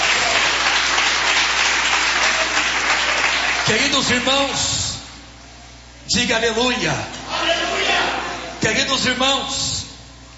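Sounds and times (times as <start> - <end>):
audience applause: 0.0 - 3.9
speech: 3.7 - 4.8, 6.1 - 7.7, 8.6 - 9.8.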